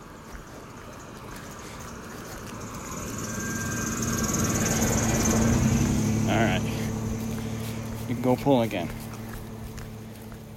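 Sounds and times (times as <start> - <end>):
car driving past outdoors by a wide open field: 0.0 - 10.5
steady high insect-like whine: 2.6 - 7.4
speech: 8.2 - 9.0.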